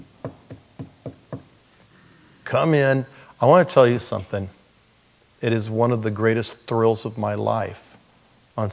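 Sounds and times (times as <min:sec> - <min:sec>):
quick knocks on a wooden door: 0:00.2 - 0:01.5
speech: 0:02.5 - 0:04.6, 0:05.4 - 0:07.8.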